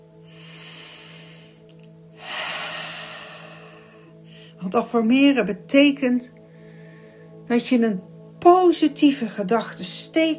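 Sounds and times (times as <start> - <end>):
slow calm breathing in and out: 0.1 - 4.6, 6.4 - 7.4
speech: 4.6 - 6.4, 7.5 - 10.3.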